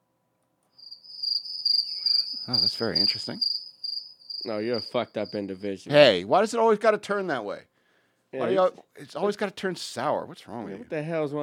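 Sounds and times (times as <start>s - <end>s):
cricket chirping: 0.8s - 6.2s
speech: 2.5s - 3.5s, 4.4s - 7.7s, 8.3s - 11.4s.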